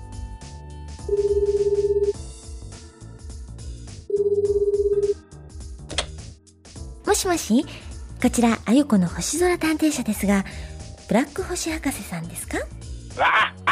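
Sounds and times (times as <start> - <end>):
telephone dialing tones: 1.1 - 2.1, 4.1 - 5.1
speech: 7.2 - 13.5.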